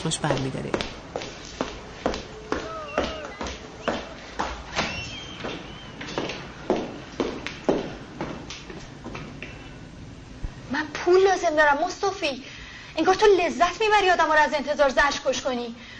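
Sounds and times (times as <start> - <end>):
speech: 0.0 - 1.1, 11.5 - 15.8
footsteps of a woman arriving at a workplace: 0.0 - 9.7.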